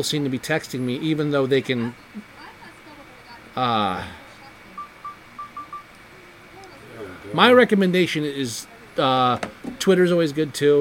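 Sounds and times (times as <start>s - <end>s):
speech: 0.0s - 2.3s, 3.6s - 4.2s, 7.3s - 10.7s
mobile phone keypad beeps: 4.7s - 6.0s.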